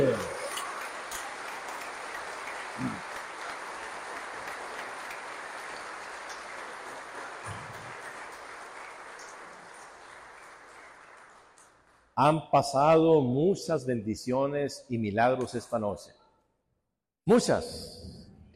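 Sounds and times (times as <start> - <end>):
audience at a church service applauding: 0.0 - 12.1
speech: 12.2 - 16.2, 17.3 - 18.0.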